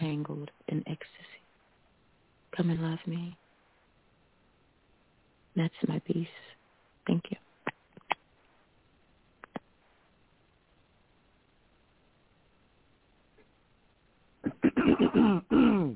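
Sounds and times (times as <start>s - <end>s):
speech: 2.6s - 3.4s, 5.6s - 6.5s, 7.1s - 7.4s
person clearing throat: 14.4s - 15.9s.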